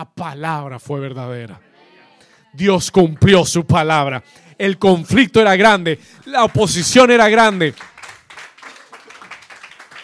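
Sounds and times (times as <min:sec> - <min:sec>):
speech: 0:00.0 - 0:01.7, 0:02.5 - 0:07.9
audience clapping: 0:06.2 - 0:10.0.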